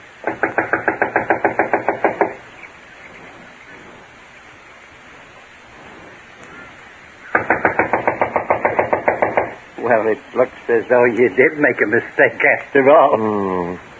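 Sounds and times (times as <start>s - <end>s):
soft hissy noise: 0.0s - 13.9s
knocking on a wooden door of a run-down unoccupied house: 0.2s - 2.4s, 7.3s - 9.6s
speech: 9.9s - 13.9s.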